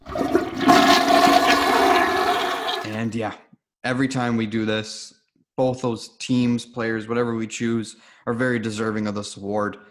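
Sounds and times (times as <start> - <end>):
toilet flushing with rushing swirling water: 0.0 - 3.0
speech: 3.0 - 9.8.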